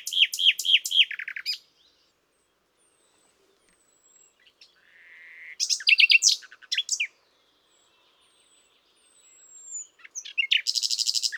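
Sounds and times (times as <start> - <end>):
common nightingale Luscinia megarhynchos singing: 0.0 - 4.9, 5.6 - 11.3.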